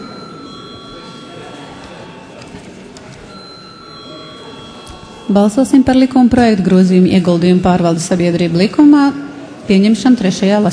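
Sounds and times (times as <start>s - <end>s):
electric bell ringing in a parliament chamber before a vote: 0.0s - 6.7s
speech: 5.3s - 10.7s.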